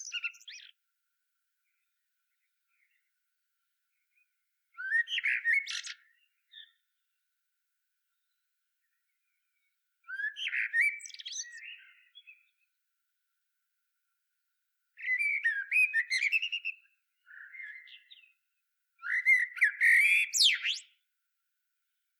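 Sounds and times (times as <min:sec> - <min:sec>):
common blackbird singing warbling fluty phrases: 0:00.0 - 0:00.8, 0:03.9 - 0:07.1, 0:08.1 - 0:12.6, 0:15.0 - 0:18.4, 0:19.0 - 0:21.0.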